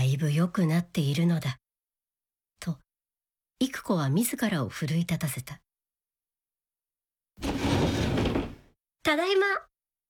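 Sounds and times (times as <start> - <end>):
speech: 0.2 - 1.6, 2.6 - 2.8, 3.6 - 5.6, 9.0 - 9.7
sliding door being pulled open vigorously: 7.4 - 8.7.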